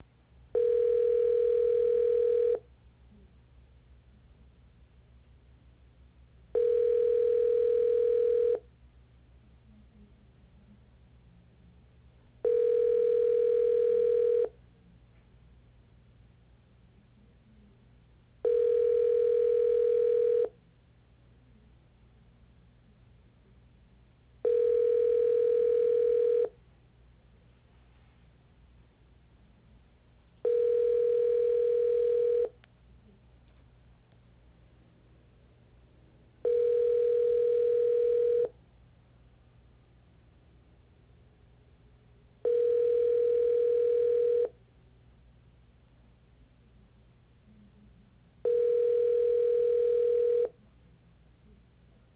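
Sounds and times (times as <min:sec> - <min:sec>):
telephone ringback tone: 0:00.6 - 0:02.6, 0:06.6 - 0:08.6, 0:12.4 - 0:14.5, 0:18.4 - 0:20.5, 0:24.4 - 0:26.5, 0:30.4 - 0:32.5, 0:36.4 - 0:38.5, 0:42.4 - 0:44.5, 0:48.4 - 0:50.5.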